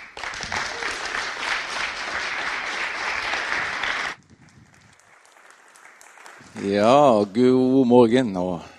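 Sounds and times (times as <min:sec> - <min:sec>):
audience applause welcoming a speaker: 0:00.0 - 0:07.0
speech: 0:06.6 - 0:08.7.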